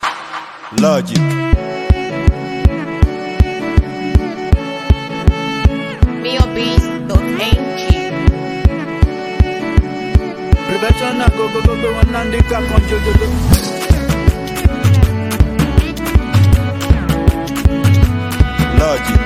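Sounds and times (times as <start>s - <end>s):
professional beat with violin: 0.8s - 19.2s.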